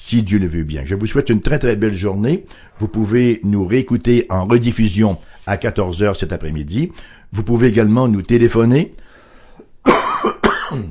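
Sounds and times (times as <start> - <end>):
speech: 0.0 - 9.0, 9.8 - 10.9
harsh chesty allergy coughs: 9.8 - 10.9.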